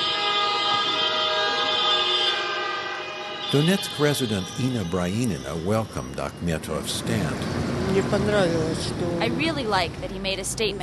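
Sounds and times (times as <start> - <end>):
many car horns honking on city streets in protest: 0.0 - 7.2
speech: 3.5 - 10.8.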